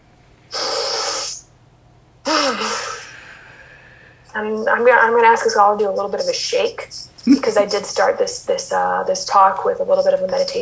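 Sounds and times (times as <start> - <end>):
deep breath taken during a guided meditation: 2.3 - 4.3
speech: 4.4 - 10.5.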